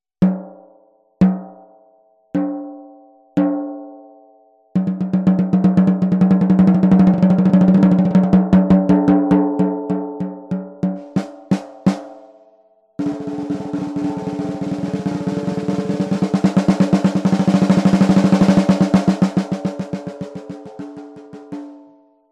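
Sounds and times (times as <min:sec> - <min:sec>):
acrylic snare drum 13x7: 0:04.8 - 0:12.3, 0:13.0 - 0:21.9.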